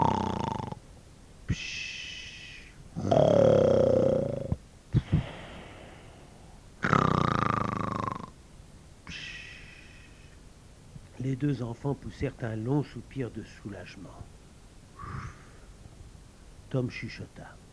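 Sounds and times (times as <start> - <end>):
two men snoring in unison: 0.0 - 0.8, 3.0 - 6.2, 6.8 - 8.3, 15.0 - 15.6
speech: 11.3 - 14.4, 16.7 - 17.6.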